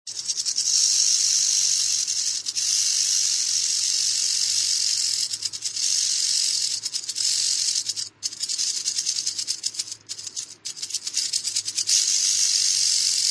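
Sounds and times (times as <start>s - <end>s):
Great Basin Rattlesnake rattling: 0.1s - 13.2s.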